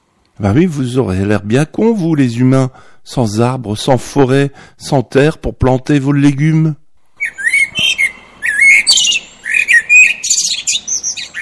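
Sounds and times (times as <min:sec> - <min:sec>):
speech: 0:00.4 - 0:08.0
birds chirping and tweeting: 0:01.6 - 0:11.4
birds squawking: 0:07.2 - 0:11.4.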